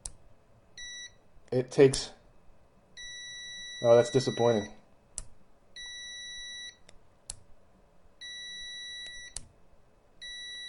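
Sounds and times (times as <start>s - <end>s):
speech: 1.5s - 2.2s, 3.8s - 4.8s
multimeter continuity tester buzzer beeping: 3.0s - 4.7s, 5.8s - 6.8s, 8.2s - 9.4s, 10.2s - 10.6s.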